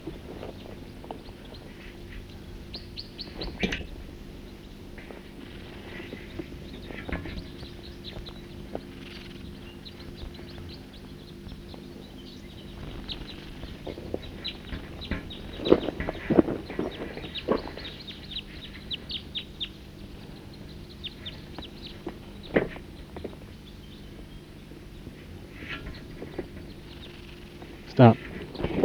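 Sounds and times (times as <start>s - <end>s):
birds chirping while drinking at a creek in a hollow among trees: 0.0s - 28.8s
steady low outdoor rumble: 0.0s - 28.8s
speech: 28.0s - 28.2s.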